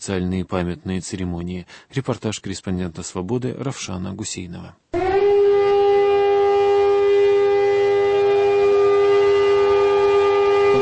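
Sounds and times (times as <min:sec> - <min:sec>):
speech: 0:00.0 - 0:04.9
civil defense siren holding one sustained tone: 0:05.0 - 0:10.8.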